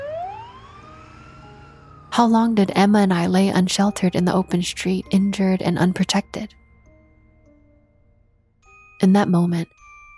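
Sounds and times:
ambulance siren wailing in an upward sweep: 0:00.0 - 0:05.0
low rumble of traffic: 0:00.0 - 0:06.5
speech: 0:02.2 - 0:06.6, 0:09.0 - 0:09.8.

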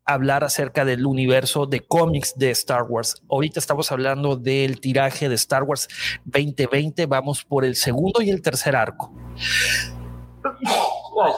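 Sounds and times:
low hum: 0:00.1 - 0:11.3
speech: 0:00.1 - 0:11.3
sneeze: 0:10.5 - 0:11.3.

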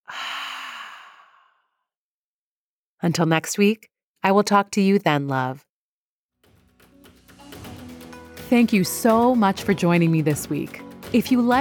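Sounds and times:
deep breath released as a long airy sigh: 0:00.0 - 0:01.8
speech: 0:03.0 - 0:05.7, 0:08.5 - 0:11.6.

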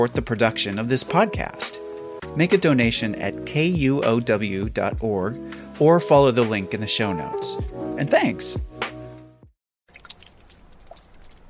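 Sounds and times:
speech: 0:00.0 - 0:01.8, 0:02.4 - 0:08.7
water dripping: 0:09.9 - 0:11.4.

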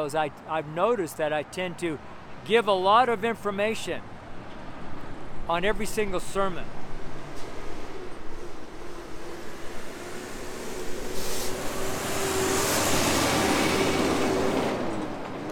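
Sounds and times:
speech: 0:00.0 - 0:04.2, 0:05.5 - 0:06.8
rising whine of a big vehicle passing: 0:00.0 - 0:15.5
steady roar of traffic on a busy street: 0:00.0 - 0:15.5
heavy trucks rumbling past on a busy street: 0:04.0 - 0:15.5.

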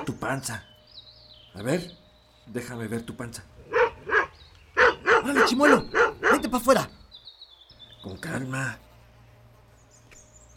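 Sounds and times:
speech: 0:00.2 - 0:00.7, 0:01.6 - 0:03.6, 0:05.2 - 0:07.0, 0:08.0 - 0:08.8
dog barking at a visitor: 0:03.7 - 0:06.9.

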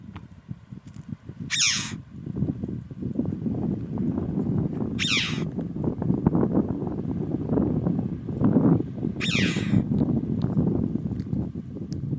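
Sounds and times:
wind buffeting an open headland: 0:00.0 - 0:12.1
chough screeching calls: 0:01.5 - 0:02.0, 0:05.0 - 0:05.5, 0:09.2 - 0:09.9.

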